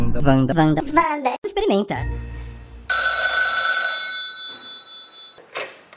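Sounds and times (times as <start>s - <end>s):
speech: 0.2s - 2.3s
mechanical bell of an old rotary-dial telephone ringing: 2.9s - 5.4s.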